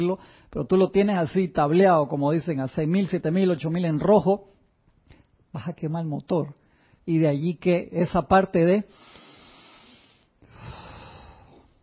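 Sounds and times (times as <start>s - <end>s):
speech: 0.0s - 4.5s, 5.5s - 9.2s
rhythmic nasal breathing as a calming breathing exercise: 0.2s - 0.5s, 8.9s - 11.8s.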